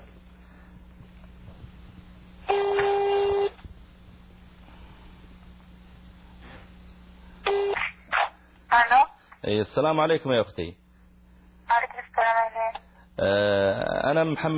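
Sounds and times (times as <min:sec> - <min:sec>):
steady low hum: 0:00.0 - 0:14.5
landline telephone call ringing through the line: 0:02.5 - 0:03.6, 0:07.5 - 0:07.8
speech: 0:09.5 - 0:10.8, 0:13.2 - 0:14.5.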